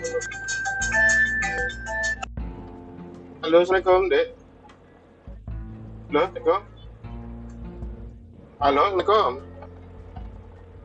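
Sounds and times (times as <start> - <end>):
mobile phone ringtone with bright electronic melody: 0.0 - 2.3
speech: 3.5 - 4.4, 6.1 - 6.7, 8.6 - 9.5.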